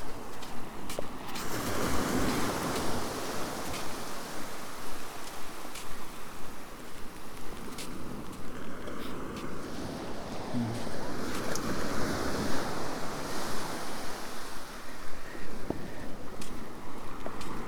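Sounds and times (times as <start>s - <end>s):
surf washing onto a beach: 0.2s - 17.6s.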